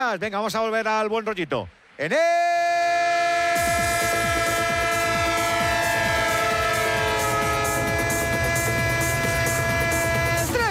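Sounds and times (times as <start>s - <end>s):
speech: 0.0s - 2.6s
train horn: 3.4s - 10.6s.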